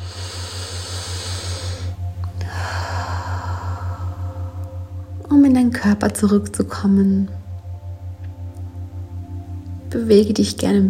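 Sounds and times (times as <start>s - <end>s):
deep breath in and out: 0.0s - 5.1s
low steady pulsing hum: 0.0s - 10.8s
speech: 5.5s - 7.4s, 10.0s - 10.8s.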